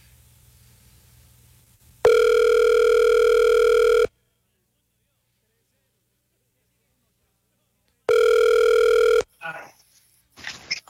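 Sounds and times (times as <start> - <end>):
ringback tone of an outgoing phone call: 2.0 - 4.1, 8.1 - 9.3
person answering the phone line: 2.1 - 4.1, 8.1 - 9.3.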